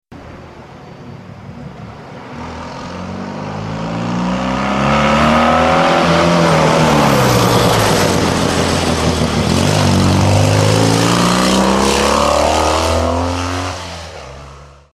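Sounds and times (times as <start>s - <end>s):
car: 0.1s - 14.9s.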